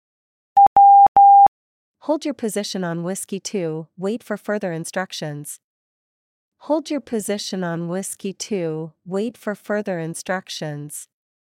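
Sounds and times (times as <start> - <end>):
Morse code beeps for letter W: 0.6 - 1.5
speech: 2.0 - 5.6, 6.6 - 11.1.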